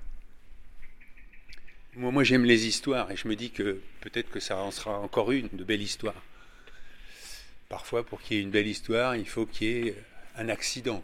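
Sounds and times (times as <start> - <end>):
common blackbird singing: 0.4 - 5.1
speech: 2.0 - 6.3, 7.7 - 11.0.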